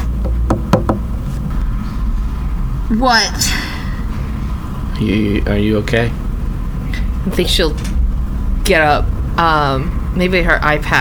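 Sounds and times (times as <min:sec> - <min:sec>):
knocking on a bathroom door: 0:00.0 - 0:01.4
low steady rumble: 0:00.0 - 0:10.9
speech: 0:02.9 - 0:03.6, 0:05.0 - 0:06.2, 0:07.2 - 0:07.9, 0:08.7 - 0:10.9.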